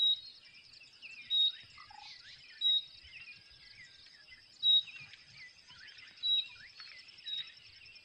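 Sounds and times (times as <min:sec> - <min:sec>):
common nightingale giving short high whistled calls: 0:00.0 - 0:08.0
other birds chirping: 0:00.0 - 0:08.0.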